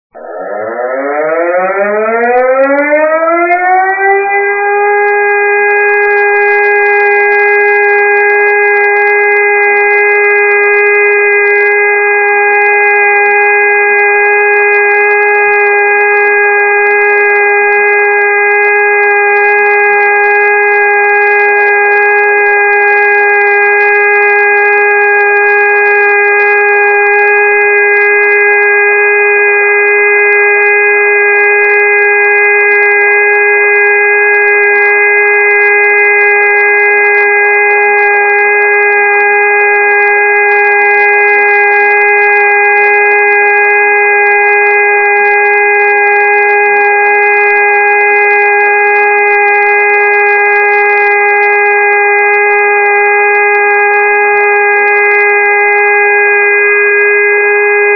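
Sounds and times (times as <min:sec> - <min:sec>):
siren test: 0:00.1 - 0:57.9.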